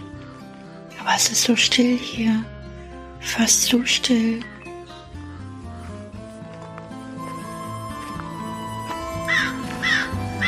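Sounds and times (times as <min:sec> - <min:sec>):
speech: 0:01.0 - 0:02.5, 0:03.2 - 0:04.6
crows cawing: 0:09.2 - 0:10.4.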